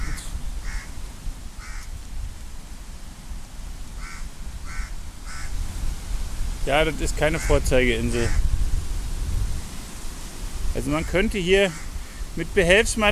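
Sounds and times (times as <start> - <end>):
crows cawing: 0.0 - 1.0, 1.6 - 2.0, 4.0 - 5.6, 7.3 - 8.5, 10.9 - 12.3
steady low rumble of wind or ambient noise: 0.0 - 13.1
speech: 6.6 - 8.5, 10.8 - 11.8, 12.4 - 13.1.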